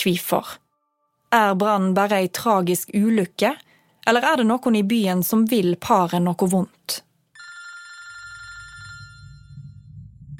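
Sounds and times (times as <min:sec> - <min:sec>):
speech: 0:00.0 - 0:00.6, 0:01.3 - 0:07.1
telephone ringing with a fast trilling bell: 0:07.4 - 0:09.6
low rumbling hum: 0:08.5 - 0:10.3.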